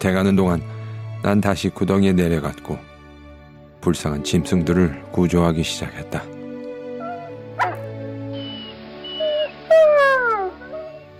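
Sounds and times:
speech: 0.0s - 2.9s, 3.8s - 6.4s
wolves whimpering excitedly: 7.0s - 11.1s.

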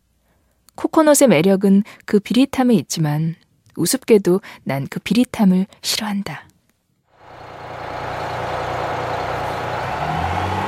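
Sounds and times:
speech: 0.9s - 6.5s
minibus engine starting and idling: 7.2s - 10.6s.

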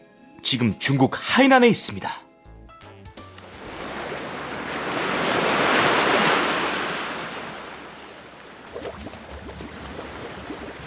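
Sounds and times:
speech: 0.4s - 2.2s
ocean waves breaking on a shore in Hainan China: 3.4s - 10.8s
foamy water splashing and fizzing as waves pull back: 3.6s - 10.8s.

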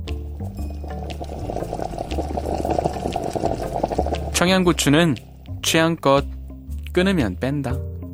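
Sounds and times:
soy sauce mixture simmering over low heat in a pot: 0.1s - 5.6s
speech: 4.4s - 7.9s.

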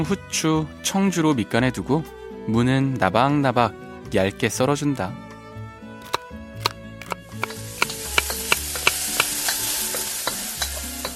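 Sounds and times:
speech: 0.0s - 5.2s
beef marinated in soy sauce sizzling and crackling with water in a hot pot: 7.2s - 11.1s.

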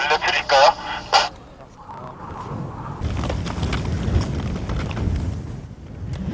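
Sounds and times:
tinny radio-filtered voice: 0.0s - 3.0s
mountain wind roaring over a crackling radio link: 0.0s - 5.9s.

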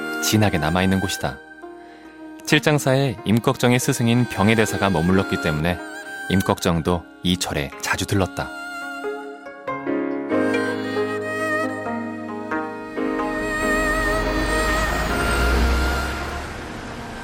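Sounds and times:
soft melodic music: 0.0s - 17.2s
speech: 0.2s - 1.5s, 2.5s - 8.6s
bus deep engine rumble as bus pulls up: 13.0s - 17.2s.

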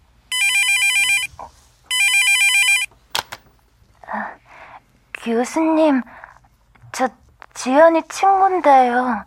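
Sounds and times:
mobile phone ringtone with warbling electronic bursts: 0.3s - 1.3s, 1.9s - 2.9s
speech: 5.2s - 6.2s, 7.0s - 9.2s.

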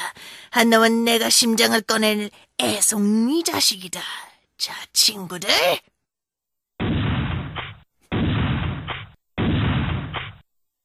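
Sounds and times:
speech: 0.5s - 5.9s
gunshots from bushes: 6.8s - 10.4s.

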